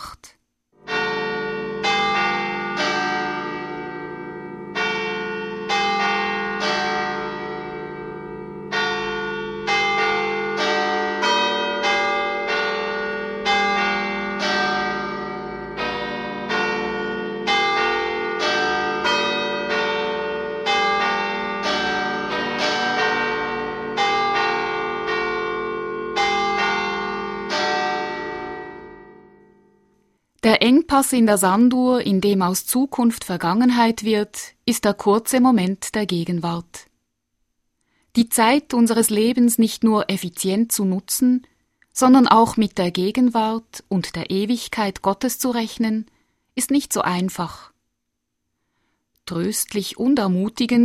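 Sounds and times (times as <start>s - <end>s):
church bells striking the hour: 0.8s - 29.8s
speech: 31.0s - 36.9s, 38.1s - 47.7s, 49.3s - 50.8s.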